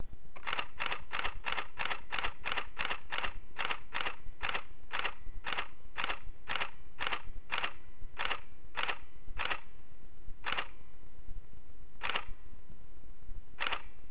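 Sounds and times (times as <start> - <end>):
Nikon D40X camera shutter click: 0.4 - 9.6, 12.0 - 12.3, 13.6 - 13.9.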